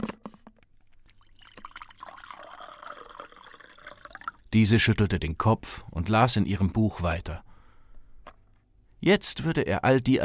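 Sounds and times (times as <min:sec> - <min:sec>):
coffee pouring from a thermos jug: 0:01.0 - 0:04.5
speech: 0:04.6 - 0:07.5, 0:09.0 - 0:10.2.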